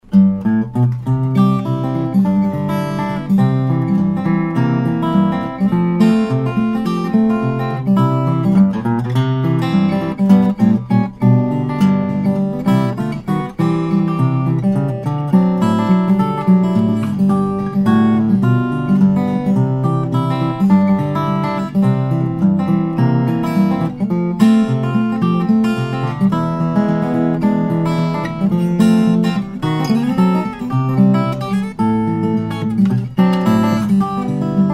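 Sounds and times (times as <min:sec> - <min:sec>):
steel string flattop guitar with slothead at the 12th fret: 0:00.0 - 0:34.7.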